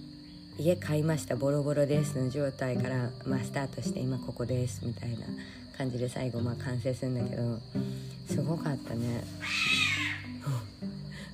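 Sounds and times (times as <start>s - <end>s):
speech: 0.6s - 10.7s
cat yowling meow: 9.4s - 10.3s.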